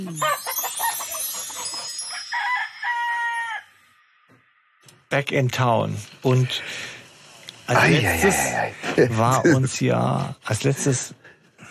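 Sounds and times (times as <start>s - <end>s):
speech: 0.0s - 0.5s, 5.1s - 7.0s, 7.7s - 11.2s
rooster crowing: 2.0s - 4.0s.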